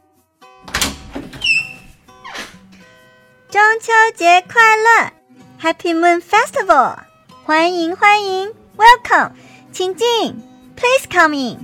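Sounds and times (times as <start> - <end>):
door latch clicks: 0.7 - 2.6
speech: 3.5 - 11.6.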